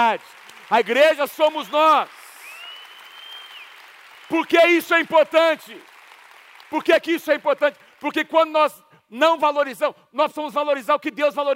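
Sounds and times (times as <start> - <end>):
speech: 0.0 - 2.2, 4.3 - 5.9, 6.7 - 11.5
audience applauding: 0.0 - 8.3.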